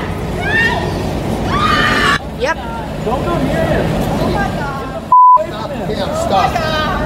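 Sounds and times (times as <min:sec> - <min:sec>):
loud noisy background: 0:00.0 - 0:07.0
woman screaming in a played video: 0:01.5 - 0:02.2
speech: 0:03.1 - 0:04.6.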